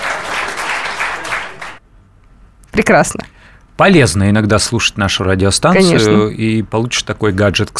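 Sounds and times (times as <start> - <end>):
crowd clapping: 0.0 - 1.8
speech: 2.8 - 7.7.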